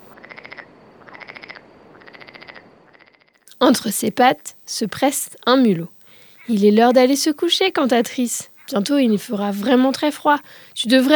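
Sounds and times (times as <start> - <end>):
frog croaking: 0.0 - 4.0, 5.3 - 10.0
soft hiss: 0.0 - 11.1
speech: 3.7 - 5.9, 6.5 - 11.1.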